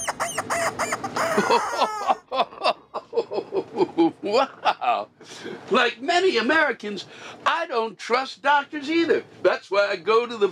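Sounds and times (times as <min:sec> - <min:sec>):
chicken clucking with squawky calls: 0:00.0 - 0:02.0
laughter: 0:01.2 - 0:05.0
speech: 0:01.4 - 0:02.5, 0:04.3 - 0:10.4.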